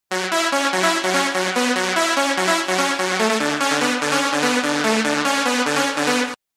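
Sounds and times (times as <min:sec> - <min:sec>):
lead synth: 0:00.1 - 0:06.4.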